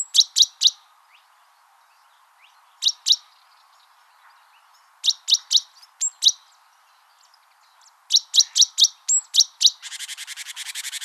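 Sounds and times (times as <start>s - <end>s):
great tit Parus major chirping: 0.0s - 1.3s, 1.9s - 11.0s
great tit Parus major harsh rapid buzzy churr: 9.7s - 11.0s.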